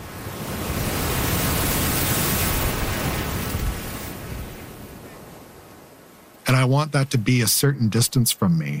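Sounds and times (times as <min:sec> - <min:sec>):
single ocean wave rolling in and breaking: 0:00.0 - 0:06.8
speech: 0:06.5 - 0:08.7.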